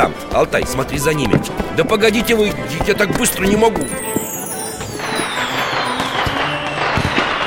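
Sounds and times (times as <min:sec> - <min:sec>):
speech: 0:00.0 - 0:04.2
fireworks crackling and popping outdoors: 0:01.3 - 0:07.4
rocket whistling as it launches: 0:03.8 - 0:07.4
sharp bangs: 0:04.9 - 0:07.4.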